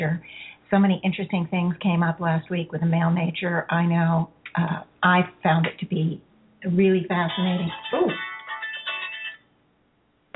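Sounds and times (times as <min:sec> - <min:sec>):
speech: 0:00.0 - 0:08.2
mobile phone electronic ringtone: 0:07.3 - 0:09.4.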